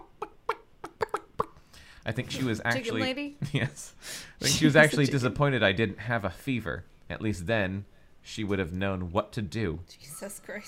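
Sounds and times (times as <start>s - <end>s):
voice imitating a hen's clucking: 0.0s - 1.6s
speech: 2.0s - 10.6s.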